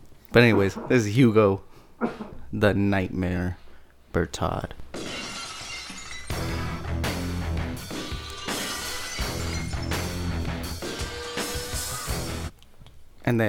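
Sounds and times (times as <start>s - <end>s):
speech: 0.4s - 4.9s, 13.3s - 13.4s
tinkling glass debris: 5.0s - 6.8s, 7.8s - 11.9s
glass bottles shattering: 5.0s - 6.9s, 7.8s - 11.8s.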